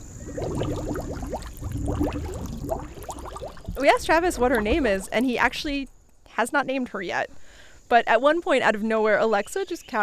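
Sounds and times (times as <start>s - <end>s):
female snapping turtle blowing bubbles in water: 0.0s - 5.7s
speech: 3.8s - 10.0s.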